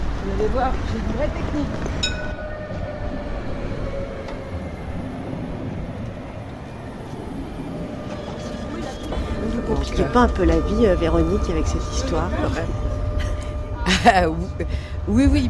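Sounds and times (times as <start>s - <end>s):
tram rumbling along rails: 0.0s - 15.4s
speech: 0.3s - 2.2s, 9.7s - 12.9s, 14.0s - 15.4s.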